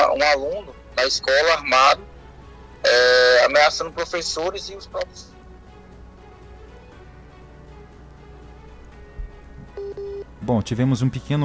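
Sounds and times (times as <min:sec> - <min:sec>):
speech: 0:00.2 - 0:02.1, 0:02.8 - 0:05.3, 0:10.5 - 0:11.4
telephone busy tone as a phone call drops: 0:09.7 - 0:10.3.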